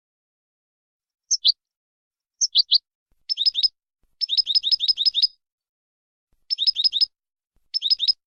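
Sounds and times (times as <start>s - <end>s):
European goldfinch singing training song in clean-song style: 1.3s - 1.6s, 2.4s - 5.4s, 6.4s - 7.1s, 7.7s - 8.2s.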